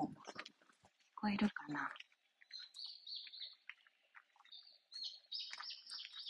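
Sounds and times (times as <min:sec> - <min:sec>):
speech: 0:01.2 - 0:02.0
several birds chirping and tweeting outdoors: 0:01.2 - 0:06.2.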